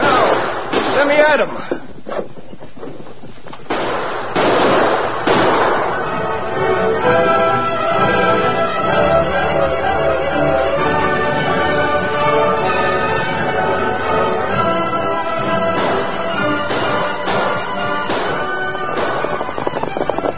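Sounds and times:
gunshots in a western shootout among rocks: 0.0 - 1.5, 3.7 - 6.2, 15.4 - 20.3
dense backdrop of sound: 0.0 - 20.3
speech: 1.0 - 1.7.

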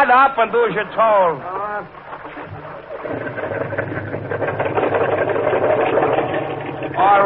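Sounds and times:
speech: 0.1 - 2.0, 7.0 - 7.2
boat motor starting and running in the surf: 1.5 - 7.2.

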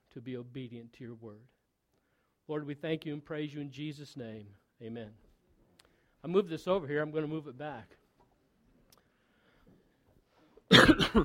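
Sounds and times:
speech: 0.2 - 1.6, 2.5 - 5.2, 6.2 - 8.0, 10.9 - 11.2
preacher coughing during a sermon: 10.7 - 11.2.

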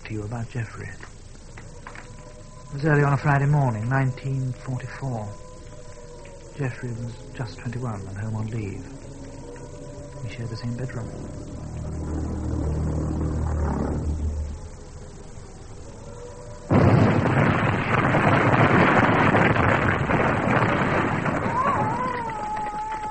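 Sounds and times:
low rumbling drone of a flying bomb: 0.0 - 22.0
speech: 0.1 - 1.2, 2.7 - 5.4, 6.6 - 9.1, 10.2 - 11.5
flying bomb explosion: 11.8 - 14.8, 16.7 - 23.0.

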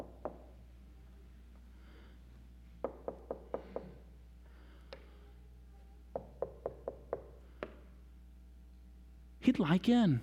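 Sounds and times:
knocking on a door: 0.0 - 0.5, 2.8 - 4.0, 6.1 - 7.8
speech: 9.5 - 10.2.

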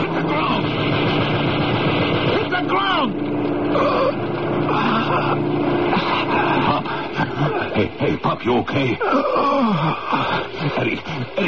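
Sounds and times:
car engine roaring while speeding around a corner: 0.0 - 8.4
laughter: 4.7 - 11.4
speech: 8.4 - 11.4.

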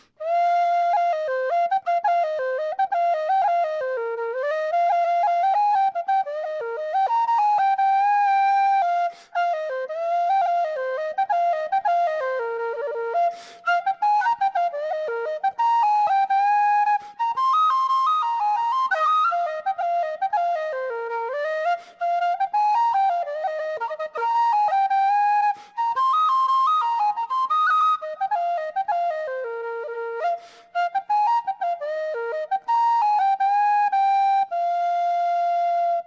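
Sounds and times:
B-flat tin whistle playing a lively ornamented tune: 0.0 - 36.0.

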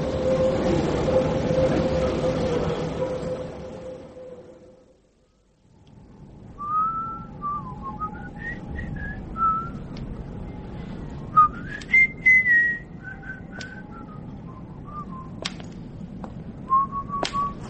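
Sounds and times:
train whistle tones: 0.0 - 5.0, 6.6 - 9.8, 11.3 - 15.3
train rumbling: 0.0 - 17.6.

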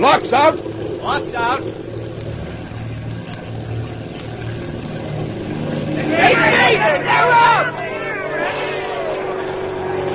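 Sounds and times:
speech: 0.0 - 1.9, 6.0 - 7.8
early propeller airplane engine droning at takeoff at Fort Myer: 0.0 - 10.1
crowd voices and shouts: 5.9 - 10.1.

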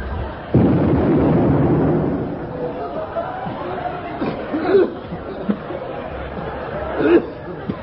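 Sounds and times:
murmuring voices: 0.0 - 7.8
gun firing with a sudden loud blast: 0.5 - 2.6
laughter: 2.6 - 7.8.

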